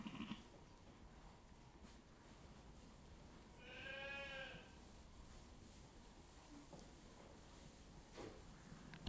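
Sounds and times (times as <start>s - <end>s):
sheep rustling and shuffling on straw: 0.4s - 8.8s
sheep bleating in a sheepfold: 3.6s - 4.7s.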